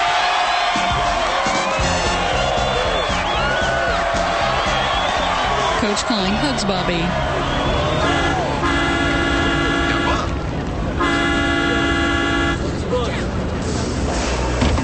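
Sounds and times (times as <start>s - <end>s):
loud street noise: 0.0s - 14.8s
bus pulling up and stopping: 1.6s - 11.0s, 12.5s - 14.8s
speech: 5.8s - 7.5s
long steady bus horn blasts: 7.9s - 10.4s, 11.0s - 12.7s.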